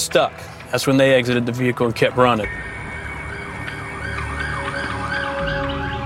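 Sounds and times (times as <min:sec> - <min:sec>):
low rumble of road traffic: 0:00.0 - 0:06.0
speech: 0:00.1 - 0:02.8
emergency vehicle siren wailing: 0:02.5 - 0:06.0.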